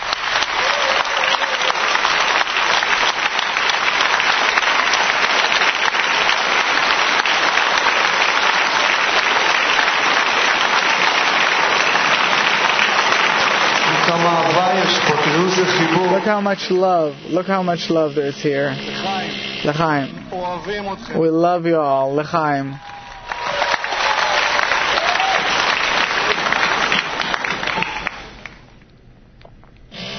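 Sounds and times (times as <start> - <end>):
large standing audience applauding: 0.0 - 17.2, 22.6 - 28.7
speech: 16.3 - 22.9.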